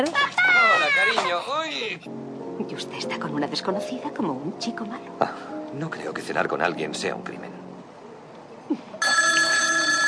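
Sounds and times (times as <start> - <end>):
speech: 0.0 - 0.3, 1.4 - 7.7, 8.7 - 9.2
telephone ringing with a steady electronic tone: 9.0 - 10.0.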